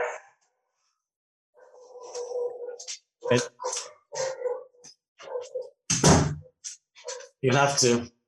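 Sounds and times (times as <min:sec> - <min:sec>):
dogs barking: 0:00.0 - 0:00.3, 0:01.6 - 0:05.8, 0:07.0 - 0:07.4
dog whining or howling: 0:01.7 - 0:05.7
speech: 0:03.3 - 0:03.7, 0:07.4 - 0:08.2
door being shut: 0:05.9 - 0:06.4.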